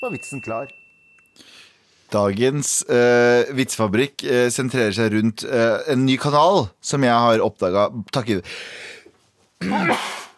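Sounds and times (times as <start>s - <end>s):
speech: 0.0s - 0.8s, 1.4s - 9.0s, 9.6s - 10.2s
person sneezing: 9.6s - 10.3s.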